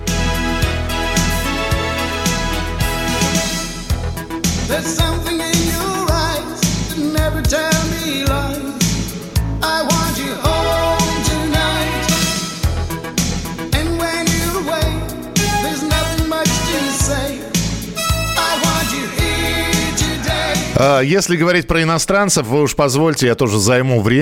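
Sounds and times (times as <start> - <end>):
full pop band backing of bass, drums and bright accompaniment: 0.0 - 21.1
male singer singing pop song: 4.7 - 12.5, 13.7 - 17.7, 18.4 - 21.1
speech: 20.8 - 24.1.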